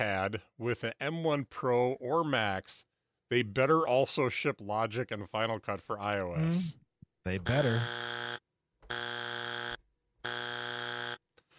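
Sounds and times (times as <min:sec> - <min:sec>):
speech: 0:00.0 - 0:08.3
loud harsh electronic buzzer: 0:07.4 - 0:11.2.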